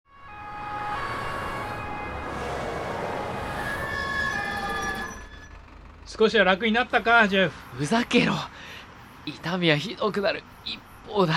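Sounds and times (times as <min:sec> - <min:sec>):
ambulance siren wailing: 0:00.1 - 0:08.1
road noise: 0:00.1 - 0:11.3
speech: 0:06.1 - 0:11.3.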